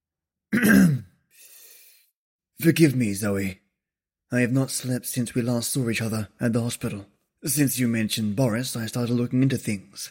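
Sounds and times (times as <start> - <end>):
man clearing his throat: 0.5 - 1.2
speech: 2.6 - 3.6, 4.3 - 10.1.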